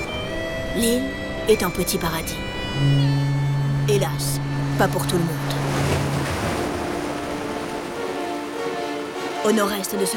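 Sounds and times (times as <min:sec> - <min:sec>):
speech: 0:00.8 - 0:03.3, 0:03.9 - 0:05.6, 0:09.4 - 0:10.1
ocean waves rolling against immense cliffs on an island shore: 0:05.6 - 0:10.1.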